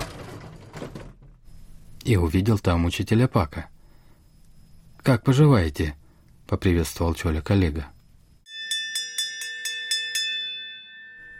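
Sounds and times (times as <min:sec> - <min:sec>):
speech: 0:02.0 - 0:03.7, 0:05.0 - 0:08.0
school bell ringing: 0:08.5 - 0:11.3.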